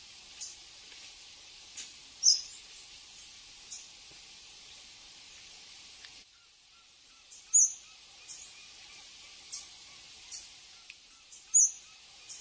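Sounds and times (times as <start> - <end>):
background hiss: 0.0 - 12.3
Red-legged honeycreeper uttering a piercing high chip: 2.2 - 2.6, 6.3 - 9.7, 10.3 - 12.3.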